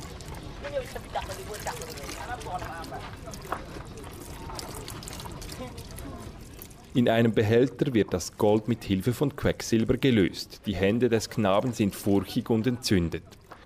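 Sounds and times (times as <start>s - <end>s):
water and wet powder pouring through a sieve: 0.0s - 7.0s
speech: 0.6s - 4.0s, 6.9s - 13.6s.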